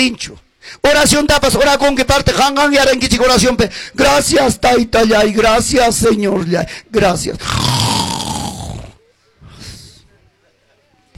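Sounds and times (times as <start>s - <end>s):
speech: 0.0s - 7.9s
loud raspy snores, possibly a person imitating snoring: 7.4s - 9.0s.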